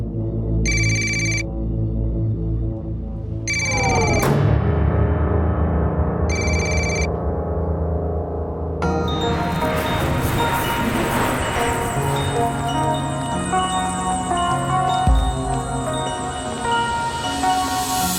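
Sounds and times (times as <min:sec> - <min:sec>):
telephone ringing with electronic trill: 0:00.7 - 0:01.4, 0:03.5 - 0:04.2, 0:06.3 - 0:07.1
dark sustained musical drone: 0:01.5 - 0:18.1.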